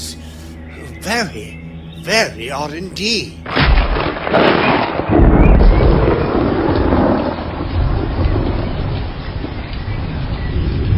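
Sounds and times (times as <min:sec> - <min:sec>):
speech: 0:01.0 - 0:04.6
deep thunder rumbling: 0:03.4 - 0:10.9
heavy rain: 0:03.4 - 0:10.9.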